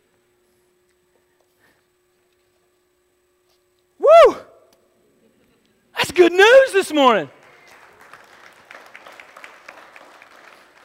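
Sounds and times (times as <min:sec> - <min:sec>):
speech: 0:06.2 - 0:07.4
crowd applauding in a large room: 0:07.1 - 0:10.8.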